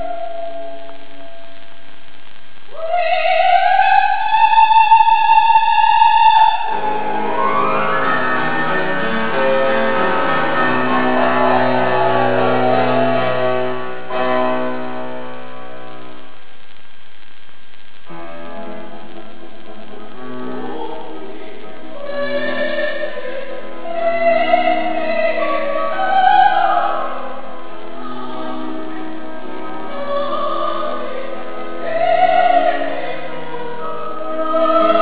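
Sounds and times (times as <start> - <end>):
person singing at a concert in Tokyo: 2.7 - 13.4, 19.9 - 34.9.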